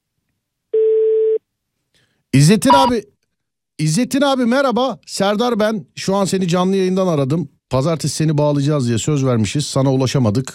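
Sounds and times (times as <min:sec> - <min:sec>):
speech: 0:02.3 - 0:03.1, 0:03.8 - 0:10.5
phone voicemail beep signaling start of message recording: 0:02.7 - 0:03.0.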